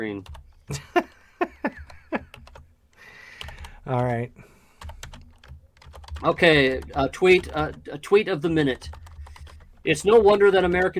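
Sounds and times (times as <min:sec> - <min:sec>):
speech: 0:00.0 - 0:01.0, 0:03.9 - 0:04.5, 0:06.2 - 0:09.0, 0:09.8 - 0:10.9
typing on a computer keyboard: 0:00.1 - 0:00.7, 0:01.8 - 0:02.6, 0:03.3 - 0:04.2, 0:04.8 - 0:07.9, 0:08.6 - 0:10.9.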